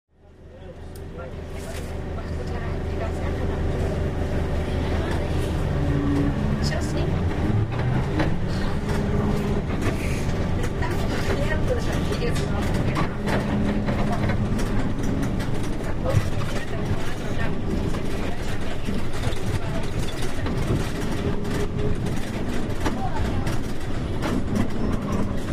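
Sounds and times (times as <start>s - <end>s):
trolleybus: 0.1s - 25.5s.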